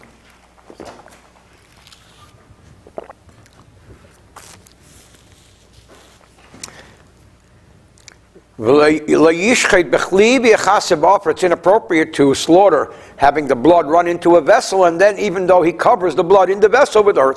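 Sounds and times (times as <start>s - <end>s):
sipping tea from a cup: 1.6s - 5.4s
person talking loudly: 8.6s - 17.3s
speech: 8.6s - 17.3s.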